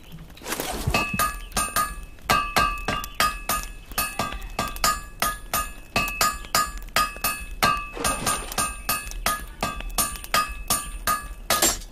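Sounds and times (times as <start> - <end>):
hammer striking metal: 1.0 - 11.9.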